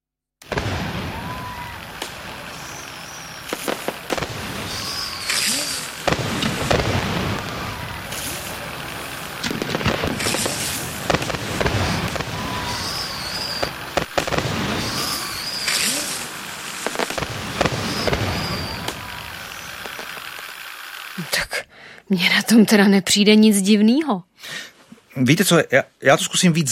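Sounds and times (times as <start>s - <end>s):
fireworks booming and crackling: 0.4s - 21.1s
whistling rockets: 0.4s - 21.1s
speech: 22.1s - 26.7s.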